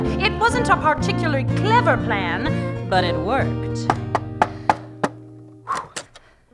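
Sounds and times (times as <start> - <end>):
speech: 0.3 - 4.1
visitors knocking on a door: 3.9 - 5.2.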